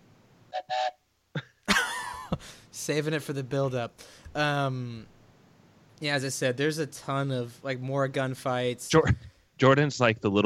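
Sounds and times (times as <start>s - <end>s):
whistle being blown: 0.5s - 1.0s
speech: 2.4s - 5.2s, 6.0s - 10.4s.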